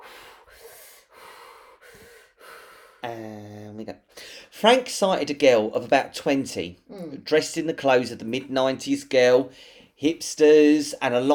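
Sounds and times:
person breathing slowly in and out: 0.0 - 3.0, 4.1 - 4.5, 9.5 - 10.0
speech: 4.6 - 11.3.

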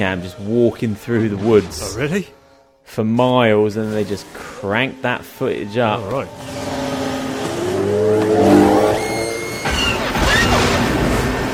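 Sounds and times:
speech: 0.0 - 6.6
film speeder bike engine roar: 3.7 - 11.5.

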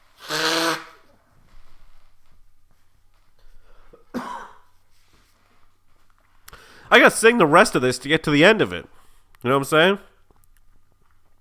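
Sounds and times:
nose blowing: 0.0 - 1.6
quiet shuffling: 1.2 - 4.0, 4.7 - 11.3
speech: 6.9 - 10.1.

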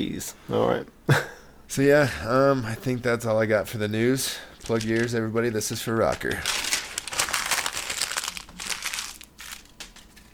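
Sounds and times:
speech: 0.0 - 6.6
sheet of paper being crumpled: 4.6 - 5.2, 6.0 - 10.3.

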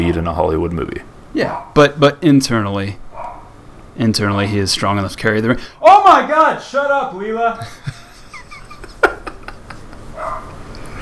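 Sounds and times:
speech: 0.0 - 3.0, 4.0 - 8.0
dog barking: 1.4 - 1.8, 3.1 - 3.6, 10.2 - 10.6
laughter: 7.5 - 10.2.

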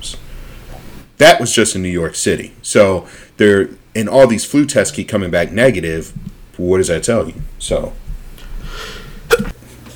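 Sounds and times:
speech: 1.2 - 8.0
breathy inhale before a sneeze: 3.1 - 3.4, 8.4 - 9.3
person sneezing: 8.7 - 9.6.

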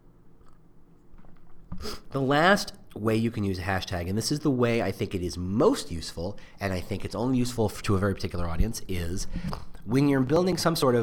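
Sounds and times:
person sipping coffee: 1.7 - 2.1
speech: 2.1 - 11.0.

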